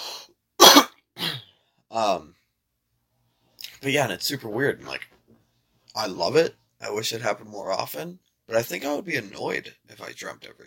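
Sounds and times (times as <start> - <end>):
person coughing loudly: 0.6 - 1.5
speech: 2.0 - 2.4, 3.8 - 5.2, 6.0 - 10.6.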